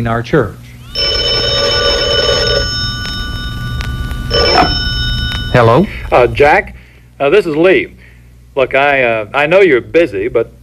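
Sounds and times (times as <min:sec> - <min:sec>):
speech: 0:00.0 - 0:01.1, 0:05.5 - 0:08.0, 0:08.6 - 0:10.6
telephone ringing with an electronic trill: 0:00.9 - 0:06.3.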